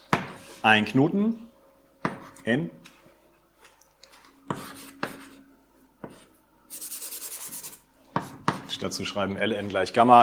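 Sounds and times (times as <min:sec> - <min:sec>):
speech: 0:00.6 - 0:01.5, 0:02.4 - 0:02.8, 0:08.8 - 0:10.2
person drawing a diagram on a board: 0:04.5 - 0:05.4, 0:06.0 - 0:08.8.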